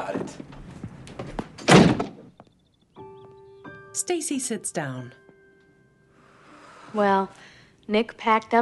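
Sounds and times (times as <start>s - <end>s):
front door swinging open with a loud thud: 1.5s - 2.3s
speech: 4.0s - 5.2s, 6.9s - 8.6s.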